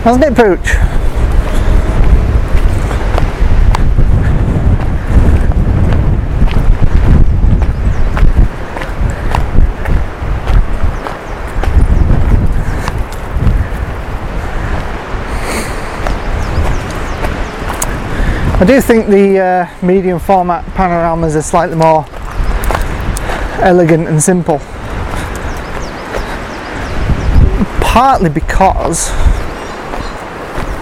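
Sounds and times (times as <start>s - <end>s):
speech: 0.0s - 1.0s, 18.6s - 22.2s, 23.6s - 24.7s, 27.9s - 29.4s
strong wind blowing outdoors, buffeting the microphone: 0.0s - 30.7s.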